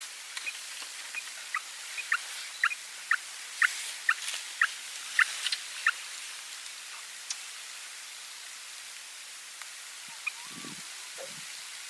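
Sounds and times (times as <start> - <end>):
Junin grebe song: 0.4 - 6.0, 10.0 - 11.6.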